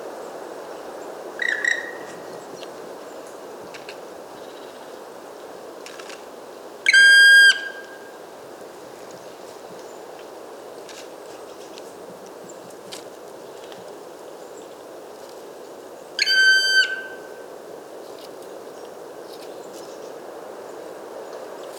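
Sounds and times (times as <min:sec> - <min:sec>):
black woodpecker giving drawn-out whistling calls: 0:01.4 - 0:02.3, 0:06.9 - 0:08.0, 0:16.2 - 0:17.3.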